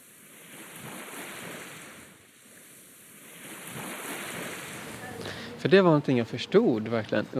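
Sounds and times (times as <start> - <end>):
sea waves breaking on shore: 0.0 - 5.2
steady hiss of surf: 0.0 - 5.6
wind: 0.0 - 7.3
speech: 5.6 - 7.3.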